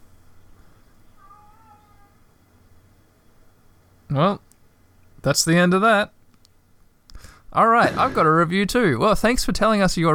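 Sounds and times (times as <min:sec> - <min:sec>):
low hum: 0:00.0 - 0:10.1
robot toy cat meowing: 0:01.2 - 0:02.2
speech: 0:04.1 - 0:04.5, 0:05.2 - 0:06.2, 0:07.5 - 0:10.1.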